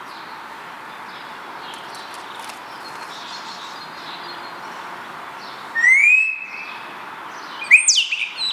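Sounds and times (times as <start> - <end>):
Spotless starling whistle: 5.8 - 6.8, 7.6 - 8.5.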